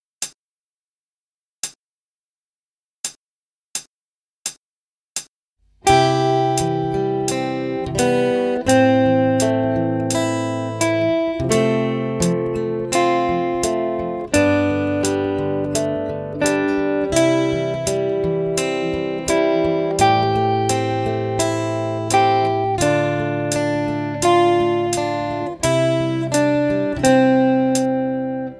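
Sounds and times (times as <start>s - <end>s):
guitar played fast on three strings: 5.8s - 28.5s.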